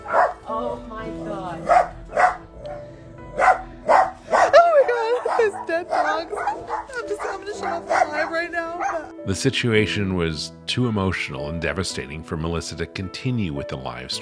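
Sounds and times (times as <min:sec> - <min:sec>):
dogs barking and yipping: 0:00.0 - 0:00.5, 0:01.6 - 0:09.1
speech: 0:07.6 - 0:14.1.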